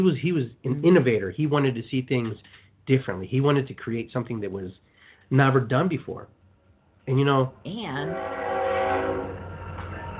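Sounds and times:
speech: 0:00.0 - 0:06.4, 0:07.1 - 0:08.5
train horn blaring: 0:08.0 - 0:10.1.

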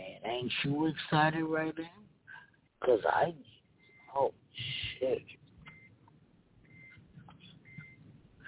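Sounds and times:
speech: 0:00.4 - 0:02.0, 0:02.8 - 0:03.5, 0:04.1 - 0:05.4
car seatbelt warning chime beeping: 0:05.7 - 0:06.0, 0:06.6 - 0:07.0, 0:07.6 - 0:08.0.

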